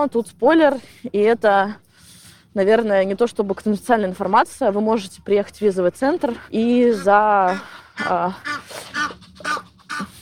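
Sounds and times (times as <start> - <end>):
speech: 0.0 - 1.8, 2.6 - 10.2
ducks quacking outdoors: 6.6 - 10.2.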